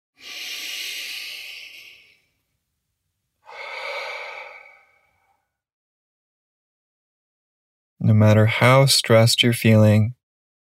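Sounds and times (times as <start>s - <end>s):
deep breaths in through nose and out through mouth: 0.2s - 2.5s, 3.4s - 5.6s
speech: 8.0s - 10.2s.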